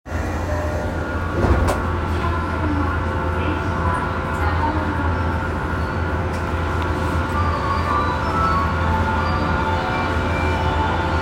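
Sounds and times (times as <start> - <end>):
train sounds at Ueno south on the Hibiya Line: 0.1 - 11.1.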